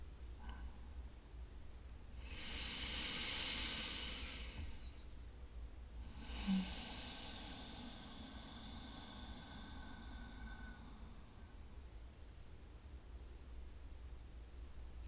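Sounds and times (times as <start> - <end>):
low hum: 0.0 - 15.0
person breathing deeply: 2.2 - 5.2, 6.0 - 11.9.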